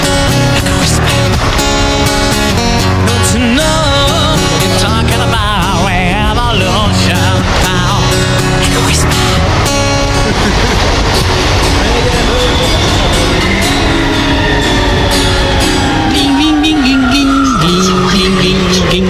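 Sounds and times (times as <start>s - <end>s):
busker's wavering melodic voice or instrument: 0.0s - 19.0s
metro train rumbling and clattering as it pulls away: 0.0s - 19.0s
laughter: 4.2s - 17.7s.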